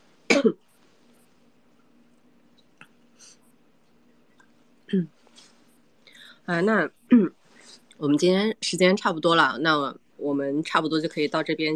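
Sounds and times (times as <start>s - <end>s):
person coughing: 0.3s - 0.6s
speech: 0.4s - 0.6s, 4.9s - 5.2s, 6.5s - 7.4s, 8.0s - 11.7s.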